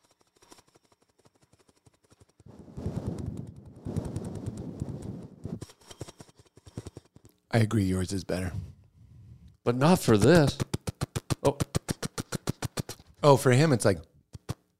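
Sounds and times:
speech: 7.6s - 8.7s, 9.7s - 10.6s, 13.2s - 14.1s
person vocally imitating a news helicopter: 10.0s - 13.0s.

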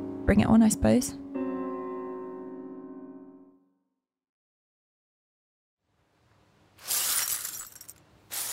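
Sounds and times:
speech: 0.3s - 1.2s
glass mirror falling and shattering on floor: 6.8s - 8.5s.

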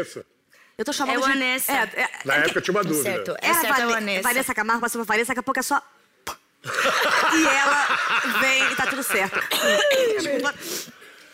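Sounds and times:
speech: 0.0s - 11.0s
laughter: 6.6s - 10.6s
person coughing with raspy voiced sounds: 9.4s - 10.6s.

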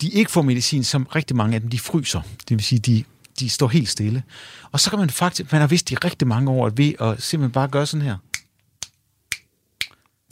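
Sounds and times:
speech: 0.0s - 8.3s
rhythmic finger snapping: 8.3s - 10.3s.

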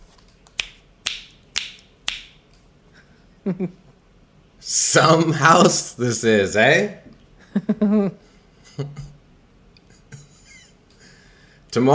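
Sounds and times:
crisp finger snaps during a game: 0.4s - 2.4s
speech: 3.4s - 3.8s, 4.6s - 8.2s, 8.8s - 9.1s, 11.7s - 11.9s.

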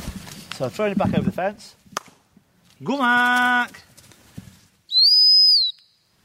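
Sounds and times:
speech: 0.6s - 1.8s, 2.8s - 3.9s
single sharp high-pitched blast on a dog-training stop whistle: 4.9s - 6.0s.

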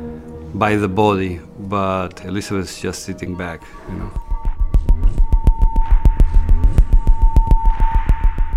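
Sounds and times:
speech: 0.6s - 4.3s
deep droning synthesizer hum: 3.8s - 8.5s
electronic synthesizer music with rapid throbbing pulse: 3.8s - 8.5s.

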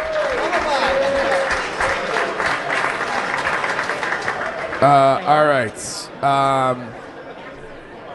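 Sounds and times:
audience applauding: 0.0s - 5.9s
speech: 4.8s - 7.0s.

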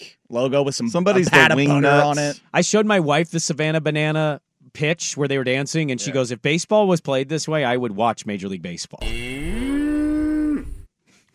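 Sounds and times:
speech: 0.3s - 9.3s
laughter: 0.9s - 2.4s
cow mooing: 9.0s - 10.8s.

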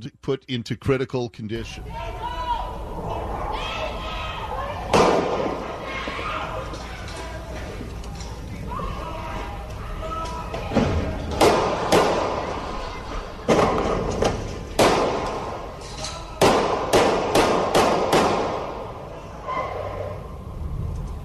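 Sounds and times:
speech: 0.0s - 2.2s
steady outdoor hum: 0.0s - 21.2s
gunshots at night: 4.9s - 5.8s, 11.3s - 12.5s, 14.7s - 15.6s, 16.4s - 18.9s.

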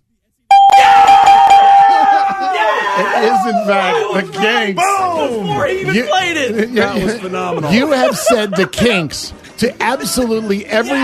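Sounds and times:
loud bell ringing: 0.5s - 2.4s
laughter: 1.7s - 11.0s
speech: 3.2s - 11.0s.

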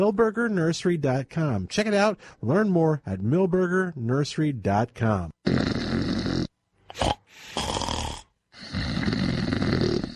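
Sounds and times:
speech: 0.0s - 6.1s
person snoring: 5.4s - 10.1s.

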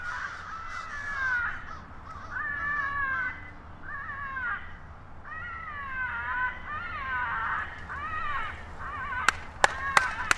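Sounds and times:
hundreds of crows cawing in a tree at twilight: 0.0s - 10.3s
sharp loud hand claps: 9.3s - 10.3s.

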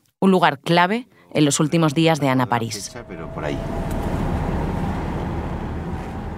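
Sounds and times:
speech: 0.2s - 3.9s
low road-and-engine rumble of a car driving: 2.6s - 6.3s.

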